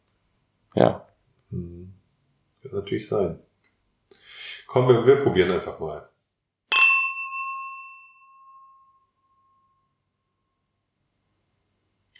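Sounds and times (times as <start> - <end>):
speech: 0.8 - 1.9, 2.7 - 3.5, 4.7 - 6.1
wine glasses clinking and ringing at a wine tasting: 6.7 - 9.6.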